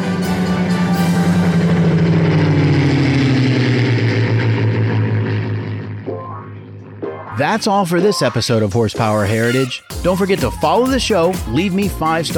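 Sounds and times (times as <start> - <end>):
Merlin piston aero engine droning as a propeller plane passes by: 0.0 - 8.2
speech: 7.4 - 12.3.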